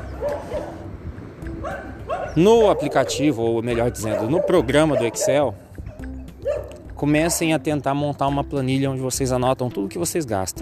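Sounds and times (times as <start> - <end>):
several dogs barking and yipping outdoors on a street: 0.0 - 7.6
speech: 2.4 - 5.6, 7.0 - 10.5.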